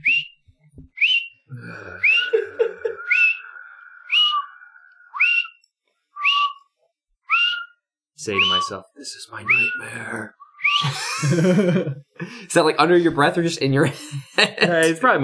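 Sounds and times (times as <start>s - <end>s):
person whistling a jaunty tune while walking down a hallway: 0.0s - 0.4s, 1.0s - 5.6s, 6.2s - 6.6s, 7.3s - 8.8s, 9.4s - 11.0s
laughter: 1.7s - 3.4s, 10.8s - 13.1s, 13.8s - 15.0s
speech: 8.2s - 15.2s.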